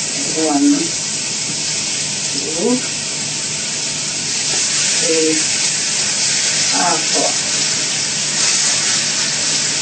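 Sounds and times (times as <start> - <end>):
plantain frying in hot oil: 0.0 - 9.8
speech: 0.4 - 1.0, 2.6 - 3.0.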